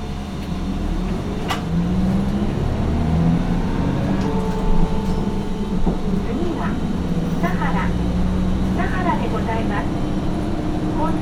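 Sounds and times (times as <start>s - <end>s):
bus engine rumbling as the bus departs from a stop: 0.0s - 11.1s
clank: 4.2s - 7.7s.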